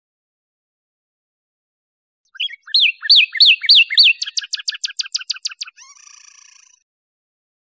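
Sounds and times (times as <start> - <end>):
northern cardinal singing: 2.3 - 6.8.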